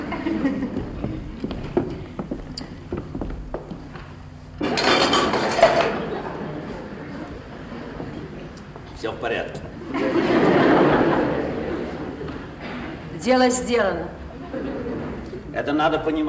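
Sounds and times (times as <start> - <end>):
laughter: 0.0 - 2.2, 5.6 - 8.5, 9.7 - 13.1, 14.2 - 15.5
speech: 0.4 - 1.1, 13.3 - 14.2, 15.6 - 16.2
dishes clinking and rattling as they are carried to the kitchen: 4.6 - 6.2
faint murmur of voices: 5.4 - 16.2.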